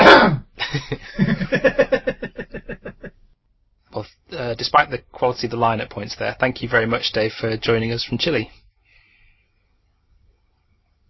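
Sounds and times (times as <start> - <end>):
throat clearing: 0.0 - 0.6
laughter: 0.6 - 3.1
speech: 0.7 - 1.9, 4.6 - 8.6.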